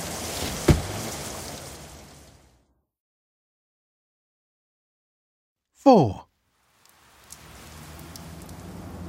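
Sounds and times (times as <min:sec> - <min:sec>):
steady rain: 0:00.0 - 0:02.7, 0:05.8 - 0:09.0
speech: 0:05.8 - 0:06.3.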